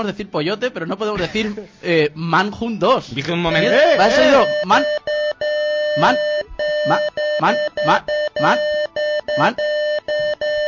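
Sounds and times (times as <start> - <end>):
speech: 0.0 - 5.2, 6.0 - 8.8, 9.4 - 9.7
steady high-pitched censor bleep: 4.1 - 10.6.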